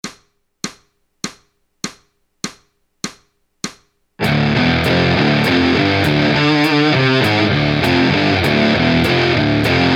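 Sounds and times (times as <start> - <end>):
easy guitar riff: 4.2 - 9.9.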